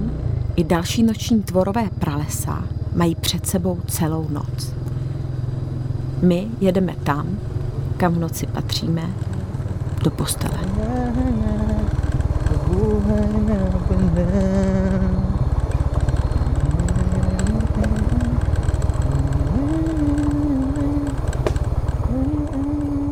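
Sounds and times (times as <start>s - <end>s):
loud drone of a motorcycle engine: 0.0s - 23.1s
speech: 0.6s - 4.8s, 6.2s - 9.4s, 10.0s - 12.0s, 12.7s - 15.2s
man singing a wandering melody while riding: 10.7s - 15.5s, 16.5s - 18.4s, 22.1s - 23.1s.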